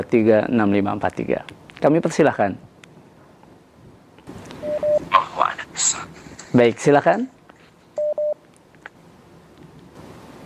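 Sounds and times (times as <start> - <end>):
speech: 0.0 - 2.7, 6.5 - 7.4
soft telephone line static: 0.0 - 10.4
telephone dialing tones of incoming call line: 4.6 - 5.0, 8.0 - 8.4.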